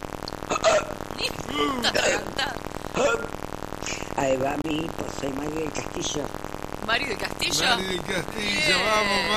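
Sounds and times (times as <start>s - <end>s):
sharp loud hiccups: 0.4s - 2.3s, 2.9s - 3.4s
speech: 1.2s - 3.3s, 4.2s - 9.3s.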